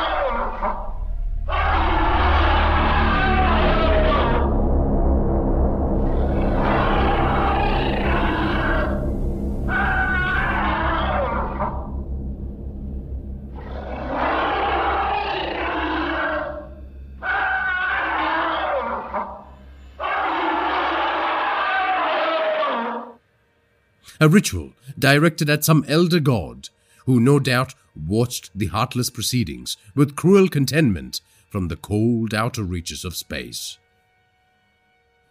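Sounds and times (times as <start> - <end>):
creatures shouting, roaring and grunting: 0.0 - 4.6, 6.0 - 9.1, 9.7 - 12.0, 13.6 - 23.2
deep constant rumble: 0.0 - 17.3
speech: 24.2 - 33.8.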